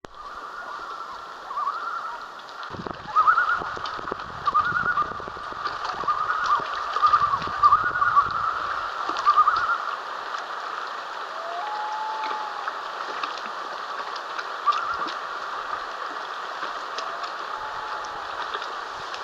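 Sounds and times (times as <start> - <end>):
loons on Palmer Lake in Atlin: 0.2 - 2.4, 3.0 - 3.8, 4.4 - 10.0, 11.2 - 12.9, 14.4 - 16.0, 16.6 - 19.0.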